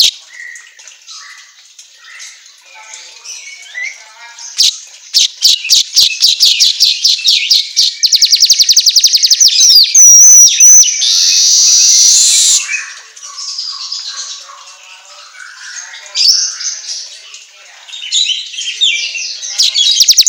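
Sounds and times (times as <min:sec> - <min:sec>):
Asian golden weaver singing: 0:03.3 - 0:20.2.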